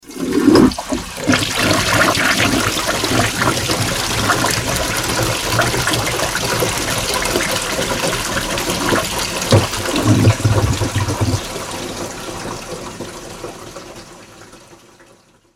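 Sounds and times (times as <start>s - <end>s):
flush toilet flushing: 0.0s - 15.5s.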